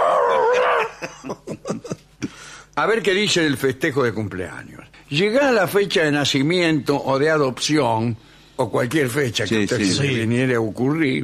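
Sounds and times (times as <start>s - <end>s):
dog howling: 0.0s - 1.0s
laughter: 0.8s - 2.1s
speech: 2.8s - 11.2s.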